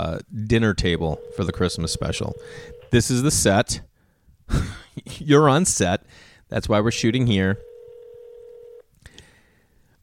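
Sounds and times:
speech: 0.2 - 3.9, 4.5 - 7.7
dial tone on a home telephone: 1.2 - 3.0, 7.6 - 8.8.

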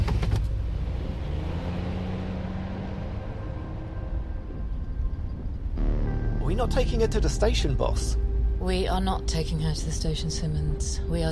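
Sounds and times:
police car engine rumbling as the car pulls away: 0.0 - 11.3
low droning hum: 4.3 - 11.3
speech: 6.5 - 11.3.

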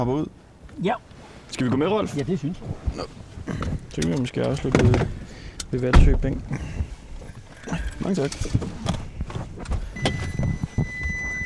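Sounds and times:
speech: 0.0 - 6.9, 7.7 - 9.0
parked car creeping into motion with a low rumble: 0.0 - 11.4
crunching thumps: 2.3 - 11.4.

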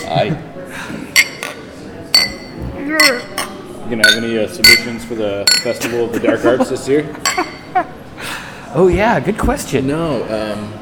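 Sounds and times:
low murmuring voices: 0.0 - 10.8
speech: 0.1 - 1.0, 2.9 - 8.0, 8.7 - 10.8
beer glasses clinking in a toast: 1.1 - 6.1, 7.2 - 7.8
laughter: 5.8 - 8.2.

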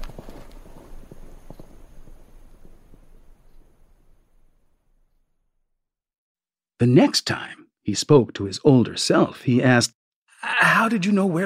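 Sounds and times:
ridden horse hooves clip-clopping at walking pace: 0.0 - 3.8
speech: 6.8 - 10.0, 10.9 - 11.4.

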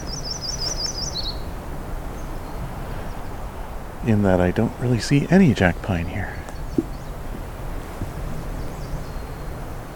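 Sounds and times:
myrtle warbler singing a trill in a black spruce forest: 0.0 - 1.5, 6.3 - 7.2, 8.3 - 9.9
wind-like outdoor noise: 0.0 - 9.9
speech: 4.0 - 6.4.

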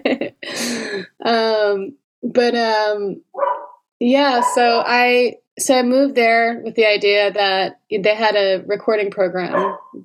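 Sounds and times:
speech: 1.0 - 3.3, 4.0 - 10.0
dog barking: 3.4 - 4.8, 9.5 - 10.0.

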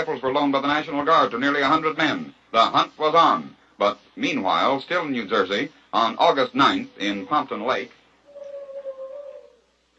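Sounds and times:
speech: 0.0 - 8.0
collie howling in Pompton Lake New Jersey: 8.2 - 9.7.

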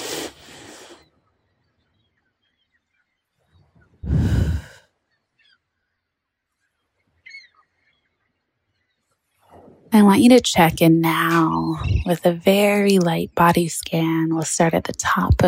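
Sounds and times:
deep inhale during a guided meditation: 4.0 - 4.9
speech: 10.0 - 15.4.

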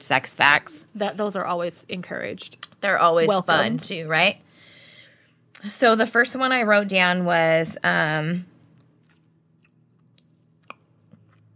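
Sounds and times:
speech: 0.1 - 4.4, 5.6 - 8.5
person chewing a big piece of bubble gum: 9.0 - 11.5.

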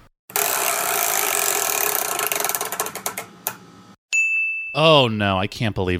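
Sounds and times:
spinning game wheel clicking against its ratchet: 0.3 - 3.6
brief ringing tone: 4.2 - 4.8
speech: 4.8 - 5.9.

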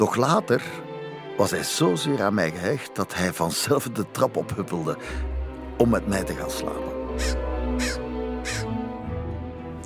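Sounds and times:
speech: 0.0 - 8.0
common raven giving harsh croaking calls: 7.1 - 8.8.

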